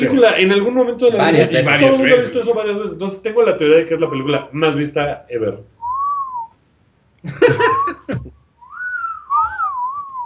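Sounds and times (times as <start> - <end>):
speech: 0.0 - 5.8, 7.2 - 8.4
person whistling: 5.8 - 6.5, 7.7 - 10.2
laughter or chatter: 7.2 - 8.4.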